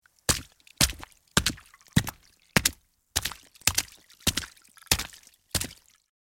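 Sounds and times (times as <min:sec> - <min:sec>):
fast walking footsteps of shoes on a wet street: 0:00.3 - 0:05.8.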